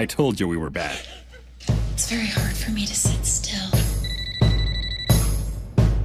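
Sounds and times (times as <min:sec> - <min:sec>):
speech: 0:00.0 - 0:04.6
laughter: 0:00.6 - 0:01.9
cell phone ringing: 0:03.8 - 0:05.8.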